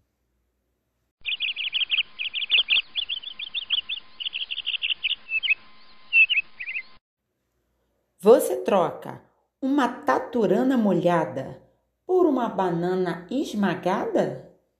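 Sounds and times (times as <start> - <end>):
small bird chirping in high-pitched tweets: 1.2 - 7.0
speech: 8.2 - 14.5.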